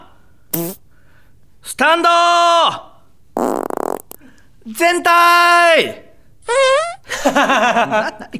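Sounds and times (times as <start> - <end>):
loud farts: 0.5 - 0.8, 3.4 - 4.2, 6.5 - 7.0
speech: 1.8 - 2.9, 4.7 - 8.3
laughter: 7.0 - 8.3.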